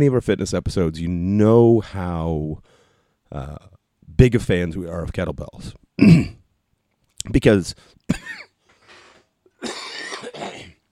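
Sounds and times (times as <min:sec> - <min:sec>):
speech: 0:00.0 - 0:06.4, 0:07.2 - 0:08.4
person coughing harshly from a tickle in the throat: 0:06.0 - 0:06.4, 0:09.6 - 0:10.8.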